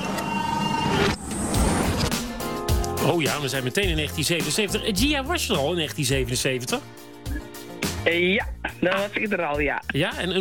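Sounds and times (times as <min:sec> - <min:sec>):
sci-fi time machine doors sliding open: 0:00.0 - 0:02.2
speech: 0:03.1 - 0:07.4, 0:08.1 - 0:10.3.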